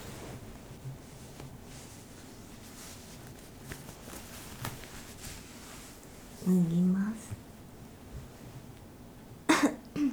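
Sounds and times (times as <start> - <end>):
speech: 6.5 - 6.8
person clearing throat: 9.5 - 10.1.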